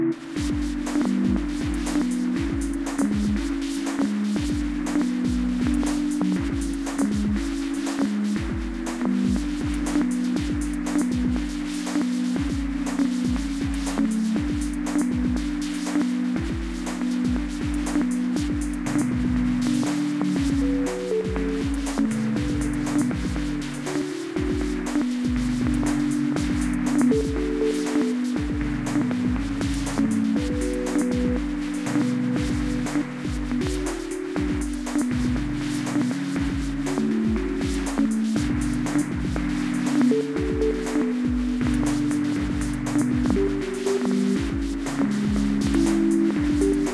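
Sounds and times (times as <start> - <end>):
chord-based drums: 0.2 - 46.9.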